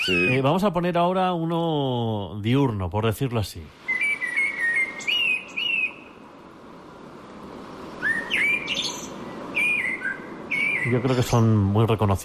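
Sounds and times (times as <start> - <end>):
common blackbird singing mellow fluting whistled phrases: 0.0 - 0.7, 3.9 - 6.2, 8.0 - 11.6
speech: 0.0 - 3.9, 10.8 - 12.2
steady rushing noise: 2.4 - 12.2.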